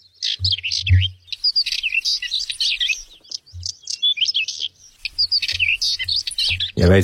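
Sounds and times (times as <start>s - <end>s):
whinchat and northern wheatear song on Schiermonnikoog: 0.0s - 7.0s
speech: 6.8s - 7.0s.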